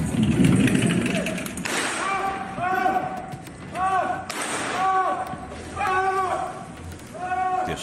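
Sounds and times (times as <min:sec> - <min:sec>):
rough noise: 0:00.0 - 0:07.8
gunshots: 0:01.1 - 0:02.5, 0:04.3 - 0:05.1
people shouting: 0:01.9 - 0:07.8.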